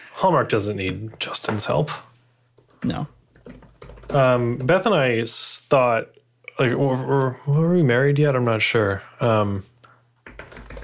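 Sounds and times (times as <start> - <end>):
speech: 0.2 - 2.1, 2.8 - 9.7
typing on a computer keyboard: 2.6 - 4.8, 10.2 - 10.8.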